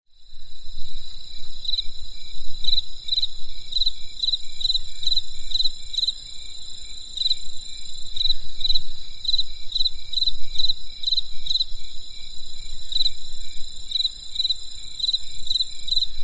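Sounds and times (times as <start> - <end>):
insects calling on a winter night in the countryside: 0.1 - 16.2.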